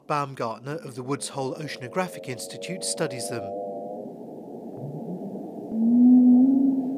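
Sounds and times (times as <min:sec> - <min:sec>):
speech: 0:00.1 - 0:03.7
humpback whale song moan: 0:02.0 - 0:06.9.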